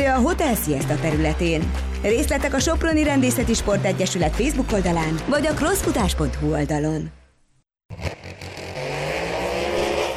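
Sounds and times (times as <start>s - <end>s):
speech: 0.1s - 7.2s
car and motorcycle racing engines roaring at an airfield acceleration race: 8.0s - 10.1s.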